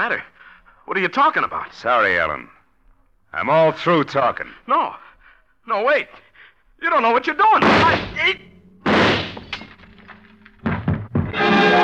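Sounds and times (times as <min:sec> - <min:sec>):
speech: 0:00.0 - 0:02.6, 0:03.3 - 0:06.2, 0:06.8 - 0:09.1
breaking noise: 0:07.6 - 0:11.7
drinking glass smashing on a tabletop: 0:08.9 - 0:11.5.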